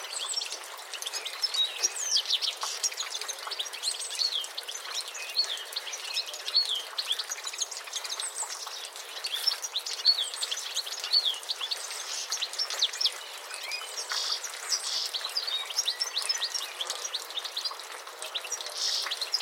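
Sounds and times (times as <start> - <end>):
European goldfinch Carduelis carduelis chirps and twitters: 0.1 - 19.3.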